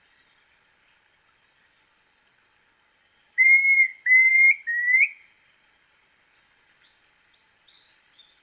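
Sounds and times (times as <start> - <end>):
Planalto tyrannulet subspecies brevirostris song: 3.4 - 5.5, 6.4 - 8.4.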